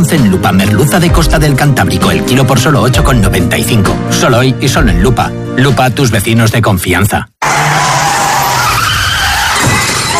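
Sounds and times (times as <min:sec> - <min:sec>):
speech: 0:00.0 - 0:07.3
car skidding with tire screech: 0:07.4 - 0:10.1
car crash: 0:08.1 - 0:10.1.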